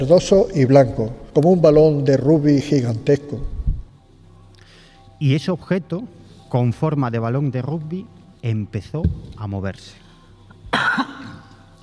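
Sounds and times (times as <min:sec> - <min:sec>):
speech: 0:00.0 - 0:03.5, 0:05.2 - 0:10.0, 0:10.7 - 0:11.2
man coughing: 0:10.7 - 0:11.5.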